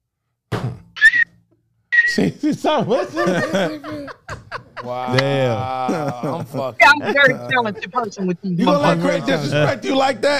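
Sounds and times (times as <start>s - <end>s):
person whistling out of the side of the mouth: 1.0s - 1.3s, 2.0s - 2.2s
speech: 2.2s - 4.2s, 4.8s - 10.3s
laughter: 2.4s - 9.9s.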